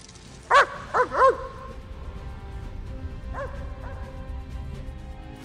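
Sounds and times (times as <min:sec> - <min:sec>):
dog yipping: 0:00.5 - 0:01.6
dog barking: 0:00.5 - 0:01.7, 0:03.3 - 0:04.1.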